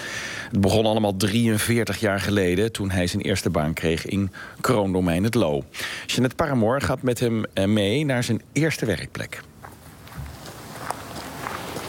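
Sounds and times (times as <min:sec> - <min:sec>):
steady hiss of noise: 0:00.0 - 0:11.8
speech: 0:00.5 - 0:09.5
footsteps walking toward a wooden hunting chalet: 0:09.4 - 0:11.8.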